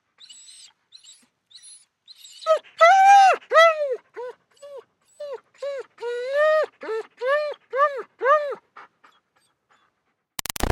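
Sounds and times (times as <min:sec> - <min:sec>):
German Shepherd dog whining: 0:00.2 - 0:09.9
burst of harsh noise: 0:10.4 - 0:10.7.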